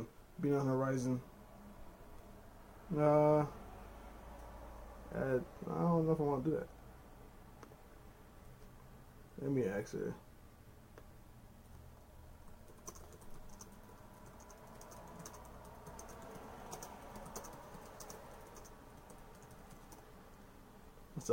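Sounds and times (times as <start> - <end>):
speech: 0.0 - 1.3, 2.9 - 3.6, 5.1 - 6.8, 9.4 - 10.2, 21.2 - 21.3
typing on a computer keyboard: 12.5 - 20.1.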